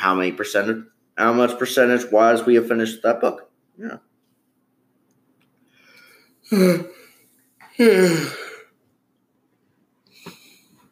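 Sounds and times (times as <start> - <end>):
speech: 0.0 - 4.1, 6.5 - 7.0, 7.8 - 8.5
person yawning: 6.4 - 8.7.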